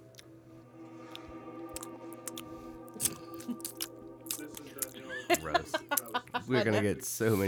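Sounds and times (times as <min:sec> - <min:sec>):
low tonal hum: 0:00.0 - 0:06.6
crunchy food chewed into a microphone: 0:01.1 - 0:06.1
laughter: 0:04.7 - 0:07.2
speech: 0:05.4 - 0:07.4.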